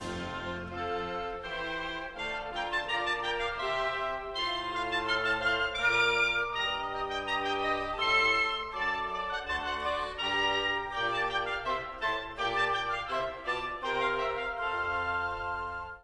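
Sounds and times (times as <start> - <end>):
woodwind instruments: 0.0 - 16.0.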